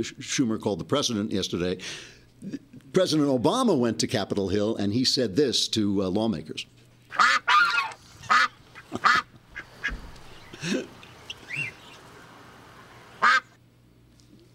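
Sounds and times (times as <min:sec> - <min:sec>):
speech: 0:00.0 - 0:07.5
duck quacking: 0:07.1 - 0:10.0, 0:11.2 - 0:12.0, 0:13.1 - 0:13.6
laughter: 0:08.0 - 0:09.4, 0:10.4 - 0:11.8
hum: 0:08.0 - 0:14.5.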